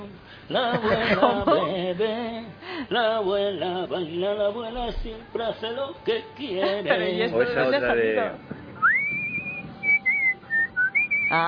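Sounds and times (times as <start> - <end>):
faint room noise: 0.0 - 11.4
speech: 0.4 - 8.6, 11.3 - 11.4
laughter: 0.5 - 1.9, 6.5 - 7.2
person whistling a tune: 8.8 - 11.4.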